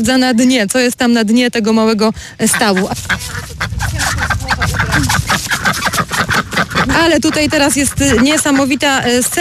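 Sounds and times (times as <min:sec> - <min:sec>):
speech: 0:00.0 - 0:04.2, 0:05.0 - 0:09.3
chorus of ducks quacking: 0:02.2 - 0:09.3.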